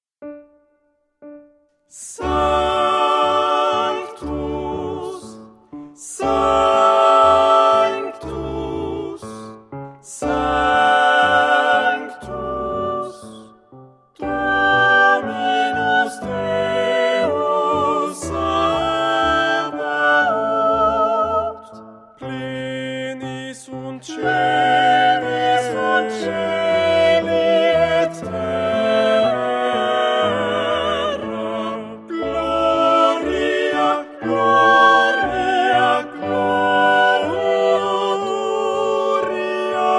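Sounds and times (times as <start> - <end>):
choral sacred piece: 1.9 - 39.9.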